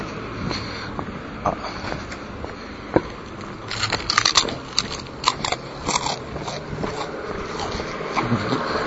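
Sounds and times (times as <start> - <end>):
traffic and engine noise beside a main road in the daytime: 0.0 - 8.8
crunching and chewing a crispy small-fish-and-almond snack while walking: 3.7 - 7.8.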